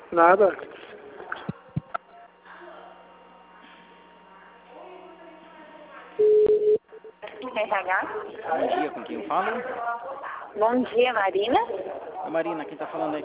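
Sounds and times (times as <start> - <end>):
speech: 0.1 - 0.9, 7.6 - 13.2
telephone ring tone beep on a line while a call is transferred: 6.2 - 6.8.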